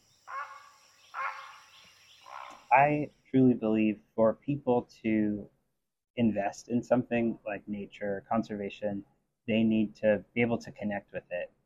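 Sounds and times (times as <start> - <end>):
great blue heron harsh raspy squawks: 0.3 - 2.7
speech: 2.7 - 5.6, 6.2 - 11.6.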